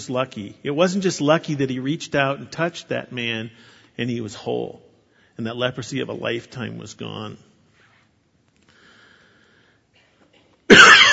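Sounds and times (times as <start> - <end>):
speech: 0.0 - 7.5
single harsh breathy cough: 10.0 - 11.1.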